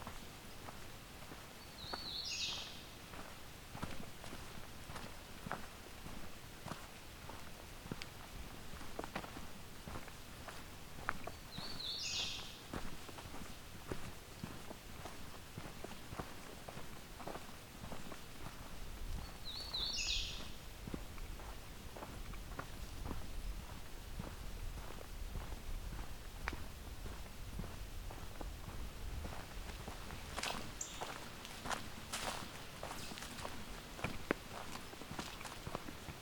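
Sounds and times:
footsteps crunching on a trail: 0:00.0 - 0:36.2
hooded warbler singing whistled phrases: 0:01.6 - 0:02.9, 0:11.3 - 0:12.6, 0:19.2 - 0:20.6, 0:30.7 - 0:31.2.

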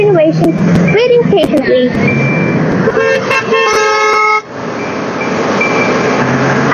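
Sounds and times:
busy street traffic at an intersection: 0:00.0 - 0:06.7
speech: 0:00.3 - 0:02.2
car horn honking: 0:02.0 - 0:04.5.

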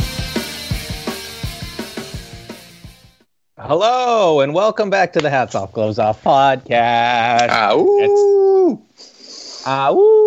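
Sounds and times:
speech: 0:03.7 - 0:08.8, 0:09.6 - 0:10.2
person imitating a wolf howl: 0:07.8 - 0:08.8, 0:09.7 - 0:10.2.

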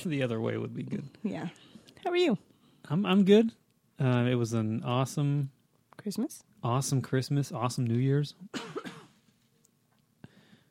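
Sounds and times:
speech: 0:00.0 - 0:09.0
person coughing: 0:08.5 - 0:09.2.

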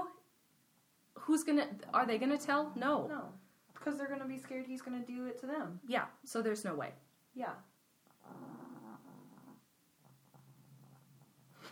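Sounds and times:
speech: 0:01.3 - 0:07.7
dog snoring in deep sleep: 0:08.2 - 0:11.2.

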